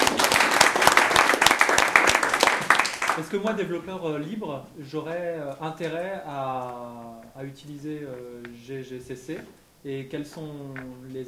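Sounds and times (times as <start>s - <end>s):
audience applause after a conference talk on software compilers: 0.0s - 3.4s
speech: 3.2s - 11.2s.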